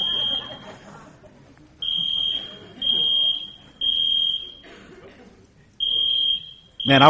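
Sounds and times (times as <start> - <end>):
fire alarm blaring in high-pitched beeps: 0.0 - 0.8, 1.8 - 4.7, 5.8 - 7.0
laughter: 0.0 - 6.2
people talking and murmuring in a large room: 0.0 - 7.0
speech: 6.9 - 7.0.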